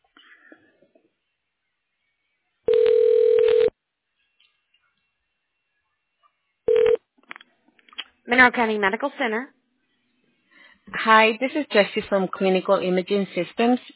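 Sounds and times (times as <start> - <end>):
telephone ringback tone during a call transfer to a medical center: 2.7 - 3.7, 6.7 - 7.0
speech: 8.3 - 9.6, 11.0 - 13.9.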